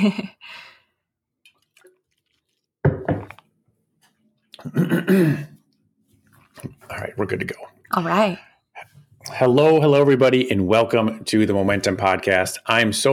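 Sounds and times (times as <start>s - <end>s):
speech: 0.0s - 0.7s, 4.6s - 5.5s, 6.6s - 13.1s
person drinking water with gulps and swallows: 1.3s - 3.6s, 4.4s - 8.1s.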